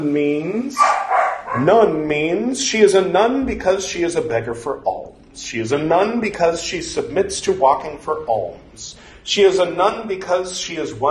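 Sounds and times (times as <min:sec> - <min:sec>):
speech: 0:00.0 - 0:11.0
dog whining: 0:00.8 - 0:01.8.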